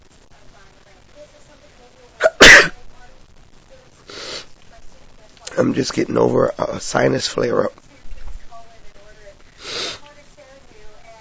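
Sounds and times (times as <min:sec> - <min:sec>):
person sneezing: 0:02.2 - 0:02.8
speech: 0:05.6 - 0:07.8.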